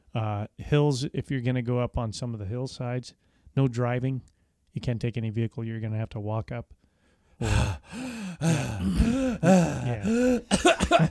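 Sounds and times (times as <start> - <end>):
speech: 0.2 - 6.8, 7.4 - 11.0
person groaning: 7.4 - 11.0
short harsh coughs: 8.7 - 11.0.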